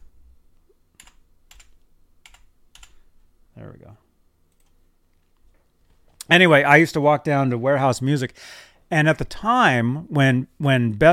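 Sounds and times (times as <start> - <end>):
keystrokes on a computer keyboard typing into a chat: 1.0 - 3.0
speech: 3.6 - 4.1, 6.3 - 11.1.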